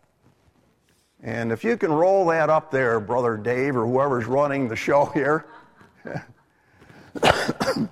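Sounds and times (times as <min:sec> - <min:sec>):
speech: 0:01.2 - 0:06.3
man coughing: 0:07.2 - 0:07.9.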